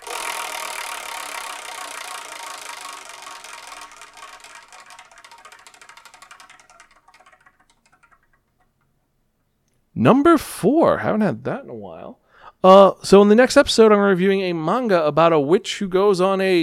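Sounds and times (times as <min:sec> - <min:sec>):
prize wheel spun to pick a title, rattling ticks: 0:00.0 - 0:09.0
speech: 0:10.0 - 0:16.6.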